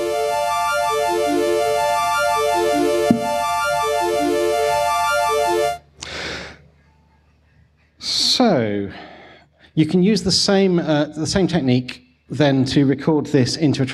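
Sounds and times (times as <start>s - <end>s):
synthesizer arpeggio sped up eight times as an effect: 0.0s - 5.8s
speech: 9.8s - 13.9s.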